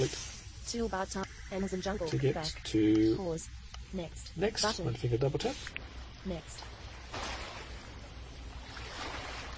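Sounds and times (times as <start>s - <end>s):
speech: 0.0s - 7.2s
ocean waves: 6.4s - 9.5s.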